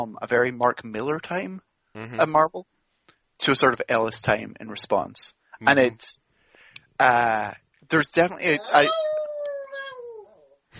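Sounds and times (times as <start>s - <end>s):
speech: 0.0s - 2.7s, 3.4s - 6.2s, 7.0s - 9.2s
dog howling: 8.6s - 10.6s.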